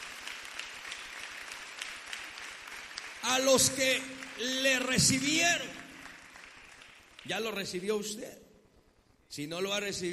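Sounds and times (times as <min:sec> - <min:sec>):
audience applause: 0:00.0 - 0:07.3
speech: 0:03.3 - 0:05.8, 0:07.2 - 0:08.4, 0:09.3 - 0:10.1.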